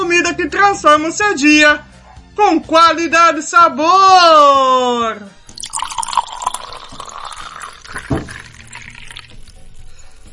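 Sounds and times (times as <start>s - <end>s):
speech: 0.3s - 5.9s
liquid sloshing: 5.5s - 9.6s
water pouring into a glass: 5.5s - 9.6s
person gulping or sipping water: 5.5s - 9.8s.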